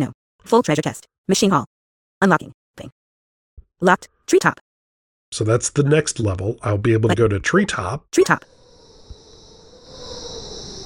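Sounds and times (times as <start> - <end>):
speech: 0.0 - 3.0, 3.8 - 4.6, 5.3 - 8.6
swarm of mosquitoes buzzing: 8.4 - 10.8.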